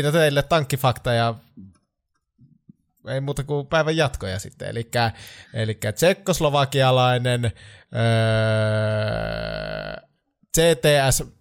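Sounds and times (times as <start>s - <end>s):
speech: 0.0s - 1.7s, 3.0s - 11.4s
human burp: 7.9s - 10.2s.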